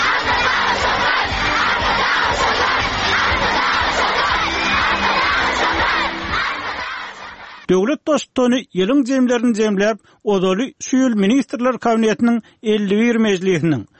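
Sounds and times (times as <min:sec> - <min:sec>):
large crowd by a New Year tree cheering and shouting in acclaim: 0:00.0 - 0:07.7
speech: 0:07.9 - 0:13.9.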